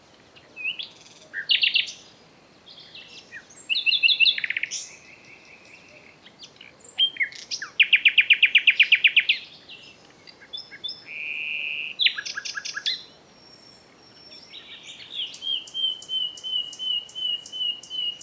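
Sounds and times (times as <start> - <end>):
common nightingale Luscinia megarhynchos singing: 0.5 - 18.2.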